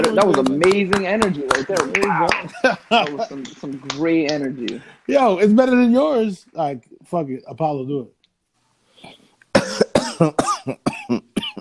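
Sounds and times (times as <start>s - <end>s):
laughter: 0.0s - 7.9s
speech: 0.0s - 8.2s, 9.0s - 11.3s
harsh coughing: 9.6s - 11.5s.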